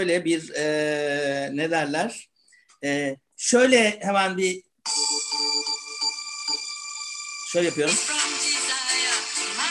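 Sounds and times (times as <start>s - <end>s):
speech: 0.0s - 5.0s, 7.5s - 8.1s
phone ringtone bright electronic melody: 4.9s - 9.6s.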